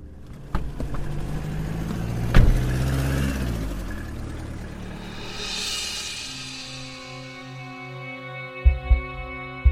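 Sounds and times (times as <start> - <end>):
car engine driving away: 0.0 - 7.6
steady low hum: 3.8 - 8.2.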